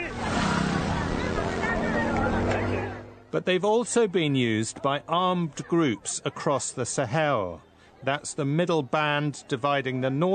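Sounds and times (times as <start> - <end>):
motorbike engines droning: 0.0 - 4.8
busy murmur of crowd voices: 0.0 - 10.3
speech: 3.3 - 10.3.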